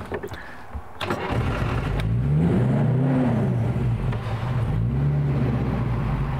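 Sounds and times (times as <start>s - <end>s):
vintage Rolls-Royce car engine starting in neutral with hand throttle set: 1.0s - 6.3s.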